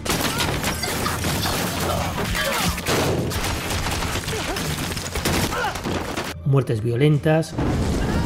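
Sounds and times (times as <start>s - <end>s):
dense rapid gunfire in a shootout: 0.0s - 6.4s
speech: 6.5s - 8.0s.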